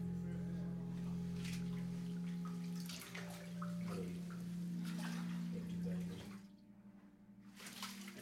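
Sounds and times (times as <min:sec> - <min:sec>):
steady electrical hum: 0:00.0 - 0:08.1
baptismal water sloshing and splashing as a person is lowered and lifted out: 0:01.4 - 0:06.6, 0:07.5 - 0:08.1.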